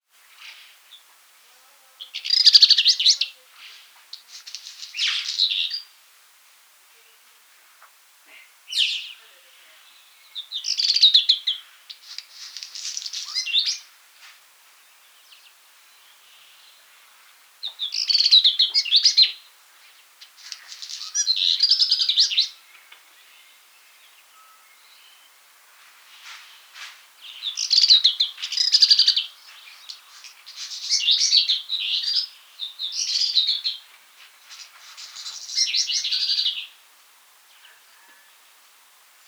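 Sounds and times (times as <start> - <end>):
black redstart: 0.4 - 5.9, 8.3 - 13.9, 17.6 - 25.4, 26.5 - 36.8.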